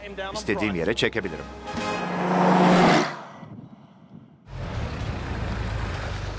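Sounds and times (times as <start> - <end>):
speech: 0.1 - 2.7
car engine roaring: 1.5 - 6.3
low rumble of a car with a transmission problem driving on a test drive: 2.0 - 6.3.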